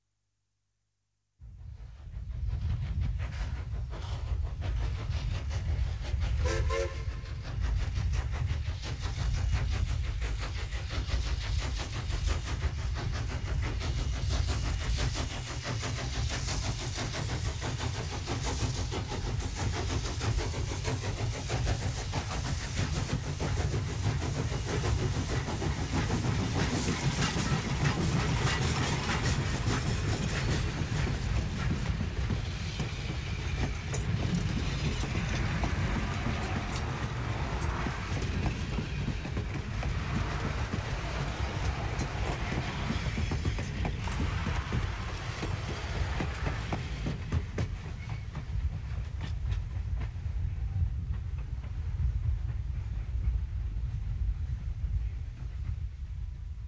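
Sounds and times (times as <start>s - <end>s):
steam train passing: 1.4s - 56.6s
steam train whistle: 6.4s - 7.4s.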